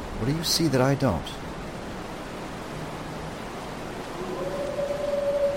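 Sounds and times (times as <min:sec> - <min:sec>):
speech: 0:00.2 - 0:01.4
wolf howling: 0:04.1 - 0:05.5.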